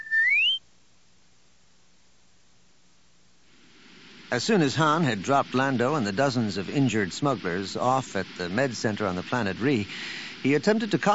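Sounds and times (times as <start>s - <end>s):
short bright droid whistle gliding upward in pitch: 0.0s - 0.6s
speech: 4.3s - 11.1s.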